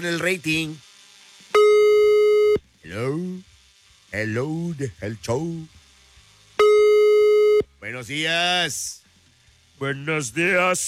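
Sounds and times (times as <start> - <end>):
speech: 0.0 - 0.9, 2.8 - 3.5, 4.1 - 5.8, 7.8 - 9.0, 9.8 - 10.8
telephone line tone after dialing a call: 1.6 - 2.6, 6.6 - 7.6.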